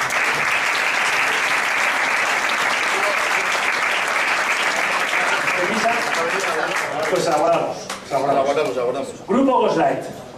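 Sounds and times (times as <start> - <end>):
room full of people applauding: 0.0 - 7.7
speech: 7.0 - 10.2.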